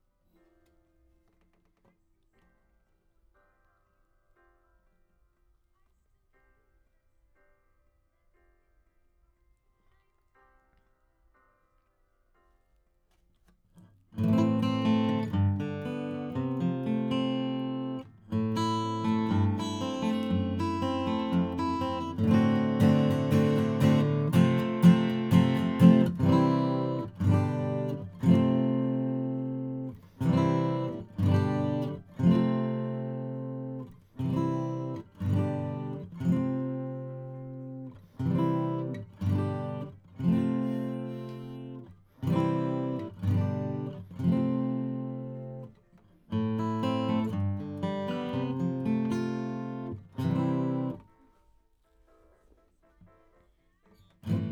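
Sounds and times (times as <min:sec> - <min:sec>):
acoustic guitar: 0:13.8 - 0:54.4.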